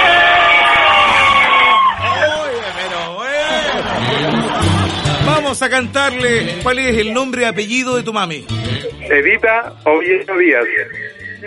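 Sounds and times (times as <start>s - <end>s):
group of about ten people shouting together in a house: 0.0s - 3.9s
laughter: 2.1s - 7.5s, 8.5s - 9.5s, 10.6s - 11.4s
speech: 5.6s - 11.4s.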